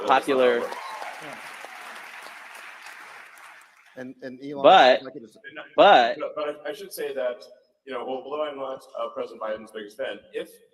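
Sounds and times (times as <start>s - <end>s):
audience applause: 0.0s - 4.0s
speech: 0.1s - 1.4s, 4.0s - 10.7s.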